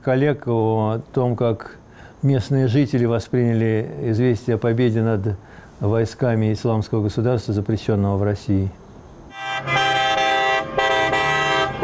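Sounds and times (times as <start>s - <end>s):
speech: 0.0s - 8.8s
car horns honking in celebration: 9.3s - 11.8s.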